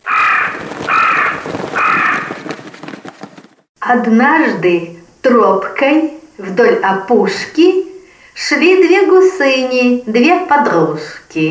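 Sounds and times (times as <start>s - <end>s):
crow cawing: 0.0s - 2.4s
speech: 3.9s - 7.8s, 8.4s - 11.4s.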